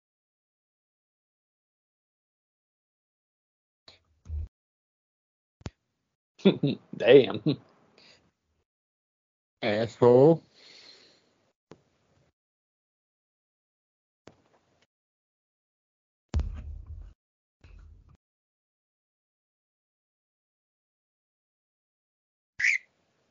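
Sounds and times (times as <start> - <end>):
speech: 6.4 - 7.7, 9.6 - 10.5
pet bird squawking: 22.6 - 22.8
sharp high pet bird chirp: 22.6 - 22.9.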